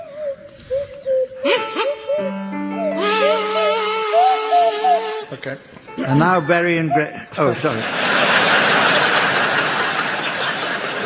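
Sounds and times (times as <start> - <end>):
swanee whistle sliding through a wobbly tune: 0.0 - 7.2
buzzing kazoo: 1.4 - 5.4
speech: 5.4 - 8.1
laughter: 6.0 - 11.0.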